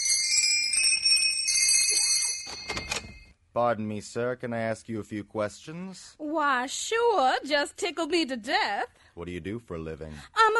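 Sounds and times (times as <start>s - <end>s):
doorbell ringing with bright sustained metallic tones: 0.0s - 3.4s
speech: 3.6s - 10.5s.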